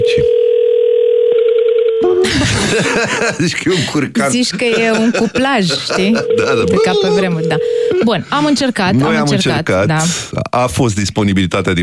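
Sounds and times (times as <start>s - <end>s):
steady single-pitched telephone call tone: 0.0s - 2.3s, 6.1s - 8.1s
laughter: 2.2s - 7.4s
speech: 3.0s - 11.8s.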